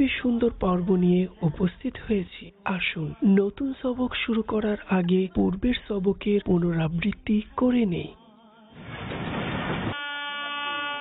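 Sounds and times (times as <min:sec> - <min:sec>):
speech: 0:00.0 - 0:08.2
train horn: 0:09.9 - 0:10.9.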